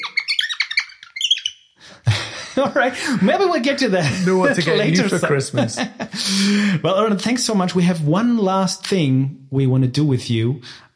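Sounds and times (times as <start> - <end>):
bird calling with bright high chirps: 0.0 - 1.8
laughter: 2.0 - 6.7
speech: 2.6 - 10.9.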